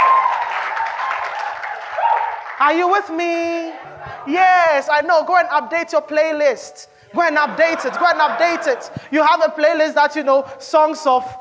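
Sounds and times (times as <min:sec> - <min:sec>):
audience clapping: 0:00.0 - 0:03.2
speech: 0:02.6 - 0:11.3
laughter: 0:02.8 - 0:05.1, 0:07.2 - 0:09.7.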